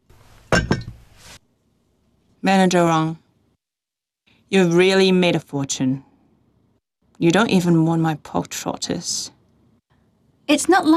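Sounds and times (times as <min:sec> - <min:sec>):
soft scraping rustle: 0:00.1 - 0:01.4
glass of water set down on a hard surface: 0:00.5 - 0:01.0
speech: 0:02.4 - 0:03.2, 0:04.5 - 0:06.1, 0:07.2 - 0:09.4, 0:10.5 - 0:10.9.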